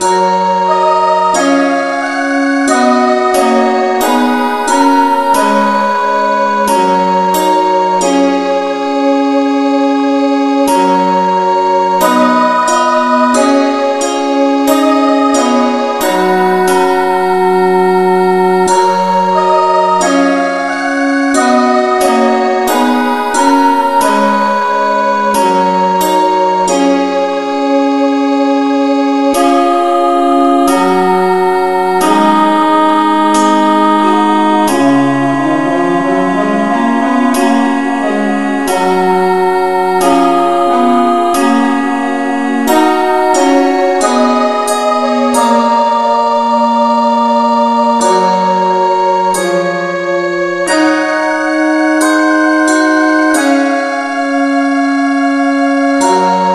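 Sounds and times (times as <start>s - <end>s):
keyboard music without vocals: 0.0s - 56.5s.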